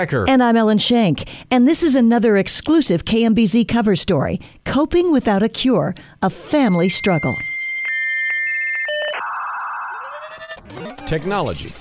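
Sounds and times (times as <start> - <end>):
speech: 0.0 - 7.6, 11.1 - 11.7
phone electronic alert with steady high beeping tone: 6.4 - 11.0.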